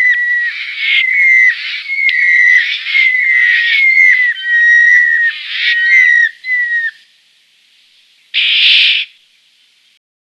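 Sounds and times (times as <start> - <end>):
White-winged chough giving drawn-out whistled notes: 0.0 - 7.0
White-winged chough harsh rasping call: 0.0 - 7.1, 8.4 - 9.2.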